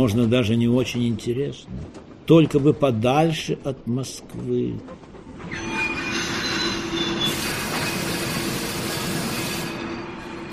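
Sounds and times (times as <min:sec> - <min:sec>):
speech: 0:00.0 - 0:05.6
railway carriage lurching: 0:00.0 - 0:10.5
train brakes screeching as a railway carriage lurches: 0:05.4 - 0:10.5.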